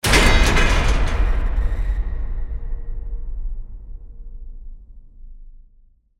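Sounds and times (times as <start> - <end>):
heavy gate impact: 0.0 - 3.6.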